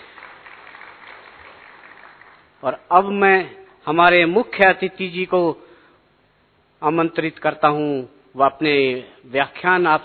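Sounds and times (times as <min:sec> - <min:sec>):
audience applauding at a ceremony after a song performance: 0:00.0 - 0:02.6
speech: 0:02.6 - 0:05.7, 0:06.8 - 0:10.0.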